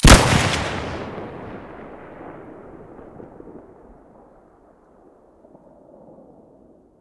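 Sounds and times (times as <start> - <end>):
weapons: 0.0 - 1.0.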